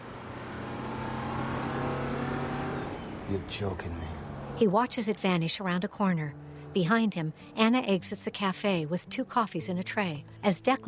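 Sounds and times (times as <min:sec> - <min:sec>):
bus engine roaring as the bus speeds off down a street: 0:00.0 - 0:07.6
speech: 0:03.3 - 0:10.8.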